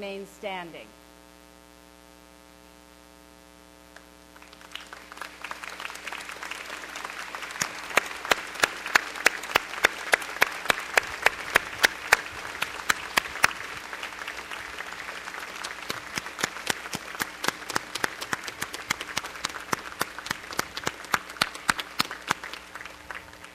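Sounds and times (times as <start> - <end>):
speech: 0.0 - 1.1
applause from a large indoor crowd at a commencement ceremony: 4.4 - 23.5.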